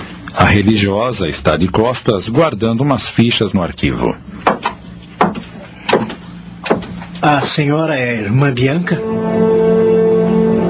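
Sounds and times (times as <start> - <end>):
faint hum: 0.0 - 10.6
speech: 0.4 - 4.6, 7.3 - 10.0
light knocking on a door: 4.5 - 6.9.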